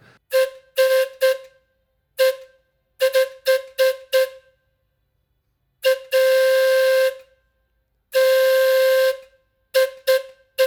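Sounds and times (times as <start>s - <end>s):
steam whistle of a carousel steam engine: 0.3s - 1.6s, 2.2s - 4.4s, 5.8s - 7.2s, 8.2s - 10.6s.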